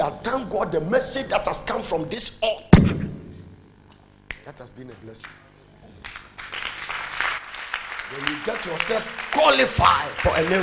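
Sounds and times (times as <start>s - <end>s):
speech: 0.0s - 3.0s, 4.5s - 5.5s, 8.1s - 10.6s
church congregation clapping during a sermon: 6.0s - 10.6s.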